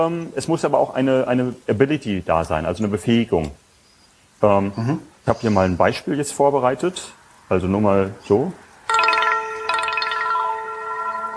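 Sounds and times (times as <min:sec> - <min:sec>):
speech: 0:00.0 - 0:03.6, 0:04.4 - 0:08.6
phone ringtone with melodic chime phrases: 0:08.9 - 0:11.3.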